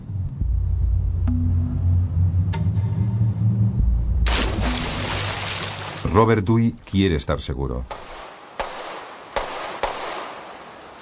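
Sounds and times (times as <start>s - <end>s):
steady hiss: 0.0s - 11.0s
speech: 6.2s - 8.2s
gunshots from a firearm: 7.9s - 10.9s.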